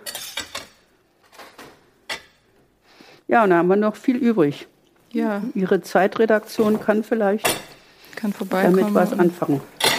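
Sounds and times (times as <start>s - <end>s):
metal cutlery clinking and clattering against dishes: 0.0s - 2.4s, 9.8s - 9.9s
speech: 3.3s - 9.9s.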